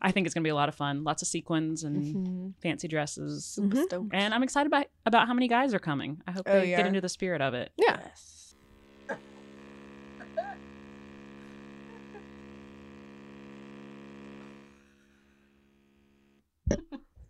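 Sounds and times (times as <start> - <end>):
speech: 0.0 - 8.4, 9.1 - 9.3
vibrator buzzing: 1.9 - 2.5, 8.5 - 16.6.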